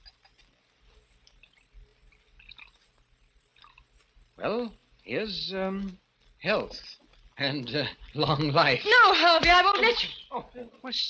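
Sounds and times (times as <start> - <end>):
Burgundy wine trickling and splashing into a goblet: 1.2 - 4.0
speech: 4.4 - 11.0.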